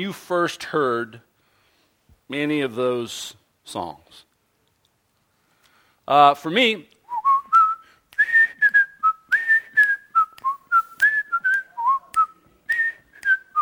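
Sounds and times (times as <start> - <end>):
speech: 0.0 - 1.3, 2.3 - 4.3, 6.1 - 6.9
person whistling a lively tune: 7.1 - 13.6.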